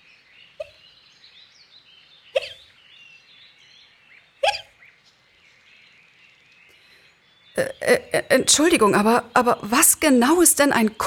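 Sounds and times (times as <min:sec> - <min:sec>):
faint bird chirps: 0:00.0 - 0:11.0
sharp loud hiccups: 0:02.4 - 0:02.6, 0:04.4 - 0:04.7
speech: 0:07.6 - 0:11.0.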